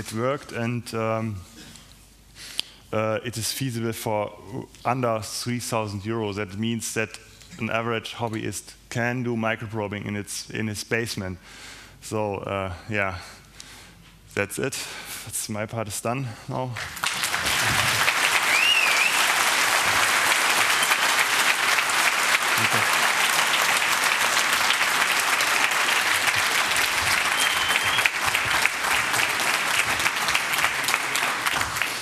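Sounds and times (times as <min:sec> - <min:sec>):
speech: 0:00.0 - 0:01.5, 0:02.9 - 0:13.4, 0:14.4 - 0:17.1
applause from a large audience: 0:16.8 - 0:32.0
faint whistles or cheers: 0:18.4 - 0:19.3, 0:20.6 - 0:21.3, 0:27.2 - 0:28.2.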